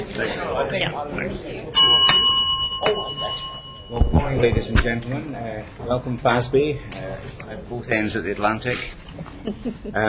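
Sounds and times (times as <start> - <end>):
murmured talk: 0.0 - 10.0
speech: 0.2 - 2.2, 2.8 - 10.0
loud bright bell struck to open a meeting session: 1.8 - 4.7.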